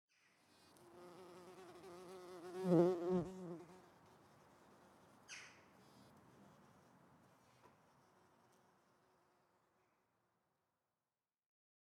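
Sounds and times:
insect wing buzz flying by: 0:00.5 - 0:04.2.

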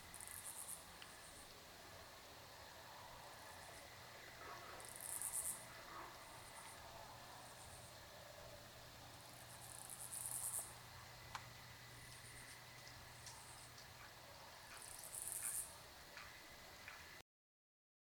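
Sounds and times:
cicada rasping bursts: 0:00.0 - 0:13.8, 0:14.6 - 0:16.8
crickets chirring in a night forest: 0:00.0 - 0:17.2.

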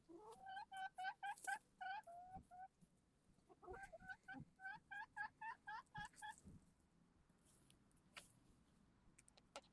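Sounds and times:
chicken clucking: 0:00.0 - 0:02.8, 0:03.4 - 0:06.5.

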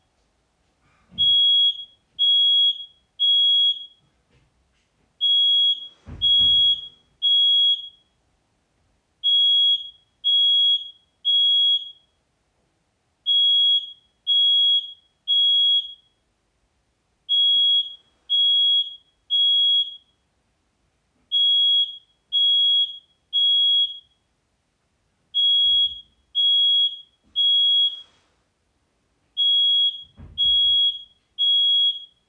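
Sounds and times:
smoke alarm: 0:01.1 - 0:04.1, 0:05.2 - 0:08.2, 0:09.2 - 0:12.2, 0:13.2 - 0:16.2, 0:17.3 - 0:20.2, 0:21.3 - 0:24.3, 0:25.3 - 0:28.2, 0:29.4 - 0:32.2.

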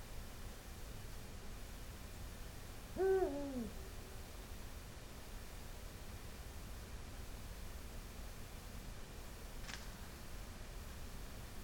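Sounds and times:
soft background noise: 0:00.0 - 0:11.6
Eurasian eagle-owl hoot: 0:03.0 - 0:03.8.

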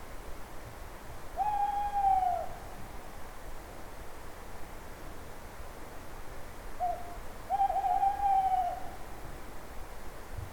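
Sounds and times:
owl hooting: 0:01.4 - 0:02.6, 0:06.8 - 0:08.9.

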